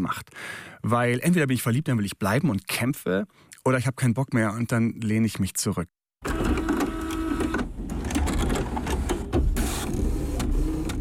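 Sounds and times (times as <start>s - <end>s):
speech: 0.0s - 6.6s
printer printing out a page: 6.2s - 10.9s.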